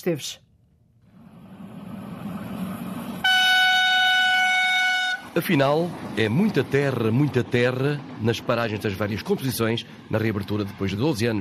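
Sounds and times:
speech: 0.0s - 0.5s, 5.4s - 11.3s
train rumbling on tracks of the Beira Baixa line in Portugal: 0.8s - 11.3s
train horn blast on the Beira Baixa line in Portugal: 3.2s - 5.4s.

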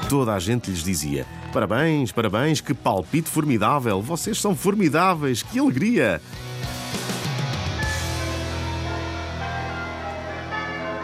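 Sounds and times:
speech: 0.1s - 6.7s
church bells ringing: 7.9s - 11.0s.

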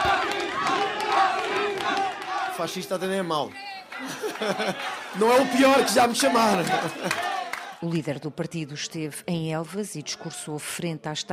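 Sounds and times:
crowd of protesters in Portugal chanting and shouting against a political party leader: 0.0s - 7.9s
speech: 2.6s - 11.3s
laughter: 3.9s - 7.8s.

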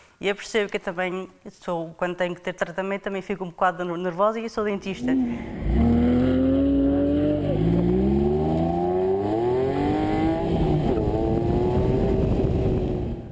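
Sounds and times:
speech: 0.2s - 5.7s
Porsche sports car engine revving and accelerating through gear changes: 5.1s - 13.3s.

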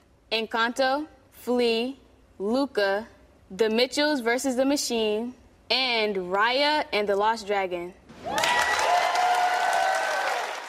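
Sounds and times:
speech: 0.3s - 8.4s
dense applause from a large audience at an awards ceremony: 8.2s - 10.6s.

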